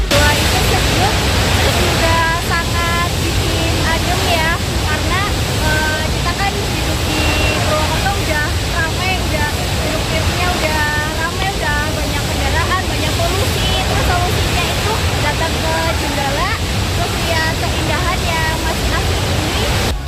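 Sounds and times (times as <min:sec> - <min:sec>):
waterfall and rocky river roaring: 0:00.1 - 0:19.9.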